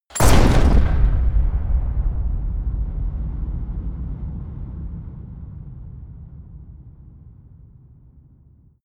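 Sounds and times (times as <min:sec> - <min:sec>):
shotgun firing with huge reverb: 0:00.1 - 0:04.2.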